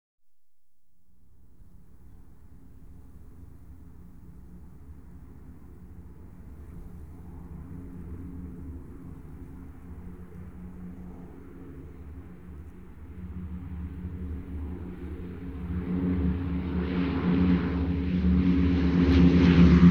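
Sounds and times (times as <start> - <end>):
aircraft taking off and departing: 5.0 - 19.9.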